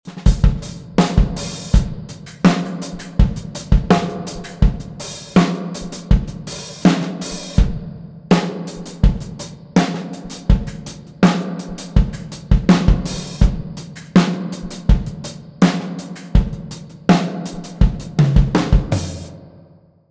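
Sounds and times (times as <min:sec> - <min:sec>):
tank drum twang: 0:00.1 - 0:19.5.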